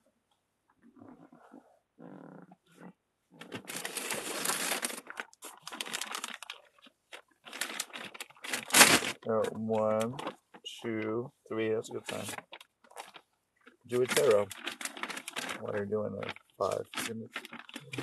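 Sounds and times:
plastic bag being crinkled and crumpled: 3.4 - 10.8, 12.0 - 18.0
speech: 9.3 - 12.5, 13.9 - 14.7, 15.6 - 18.0.

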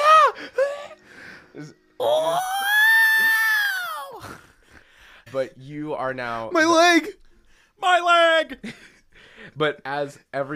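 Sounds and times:
speech: 1.6 - 2.6, 5.3 - 7.2, 7.8 - 10.5
voice imitating the distant scream of a person falling into a whirlpool: 2.0 - 4.2.

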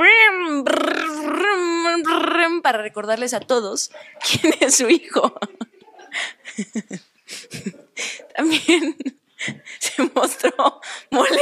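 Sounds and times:
single voice imitating a revving car engine: 0.6 - 2.5
speech: 2.7 - 5.5, 6.6 - 7.1, 8.5 - 9.2, 10.0 - 11.3
laughter: 3.8 - 11.3.

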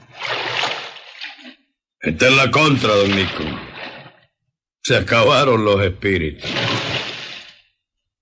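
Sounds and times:
bucketful of water flung out in a splash: 0.0 - 4.4, 6.4 - 7.8
speech: 2.0 - 3.7, 4.9 - 6.8.

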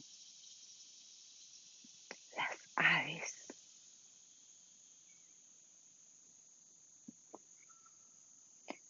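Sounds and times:
high-pitched insect drone in a park with many trees: 0.0 - 8.8
breathy whisper-like bursts: 2.4 - 3.4.

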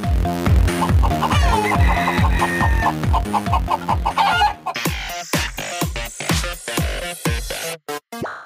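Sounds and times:
steady driving rhythmic beat: 0.1 - 7.8
rooster clucking: 0.7 - 5.4
rooster crowing: 1.2 - 4.7.

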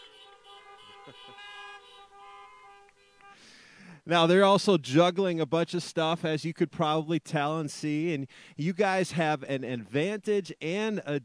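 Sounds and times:
crowd of car horns honking: 0.0 - 3.8
speech: 1.0 - 2.4, 3.3 - 11.2.

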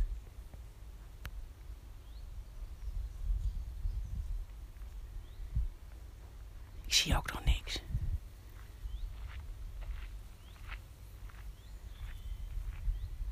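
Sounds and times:
small birds chirping outdoors: 0.0 - 13.3
soft whispering: 6.9 - 8.0
speech: 7.0 - 7.9
rustle or footstep: 8.5 - 13.0.

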